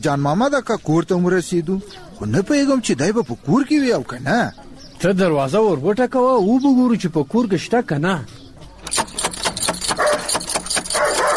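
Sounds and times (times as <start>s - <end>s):
speech: 0.0s - 8.4s
fierce dog barking at a door: 9.9s - 11.3s.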